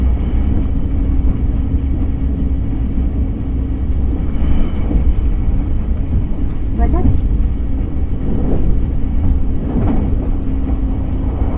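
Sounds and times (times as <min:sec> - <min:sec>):
moving train interior rumble on a rail journey: 0:00.0 - 0:11.5.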